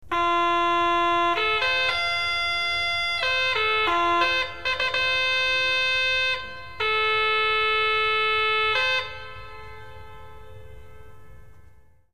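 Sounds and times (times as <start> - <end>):
trumpet: 0.0 - 12.0.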